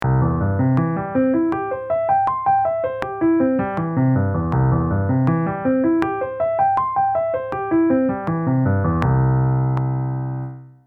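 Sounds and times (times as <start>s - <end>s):
metronome ticking: 0.0s - 10.6s.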